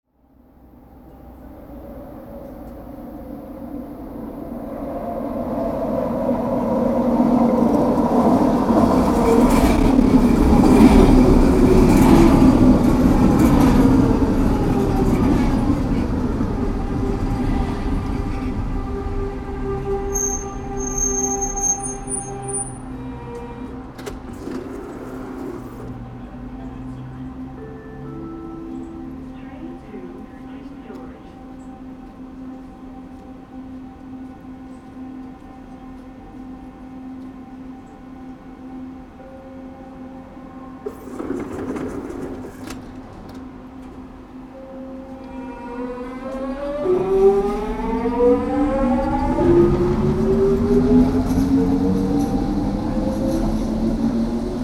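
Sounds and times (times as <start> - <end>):
SkyTrain station ambience in Burnaby, Canada: 0.1 - 54.6.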